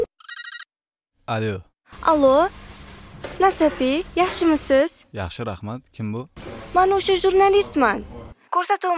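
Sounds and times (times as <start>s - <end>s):
telephone touch-tone beeps: 0.2s - 0.7s
trilling electronic telephone ring pulses: 0.2s - 0.7s
speech: 1.3s - 2.6s, 3.4s - 8.9s.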